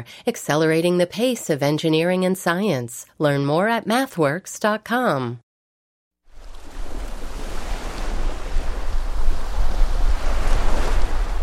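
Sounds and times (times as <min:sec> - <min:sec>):
speech: 0:00.0 - 0:05.4
surf washing on a sunny beach: 0:06.3 - 0:11.4
wind buffeting the microphone: 0:06.4 - 0:11.4.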